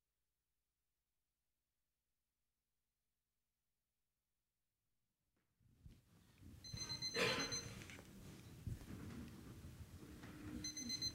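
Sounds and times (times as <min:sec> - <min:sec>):
low noise: 0:05.8 - 0:11.1
modern wake-up alarm clock ringing with high electronic tone: 0:06.7 - 0:07.8, 0:10.6 - 0:11.1.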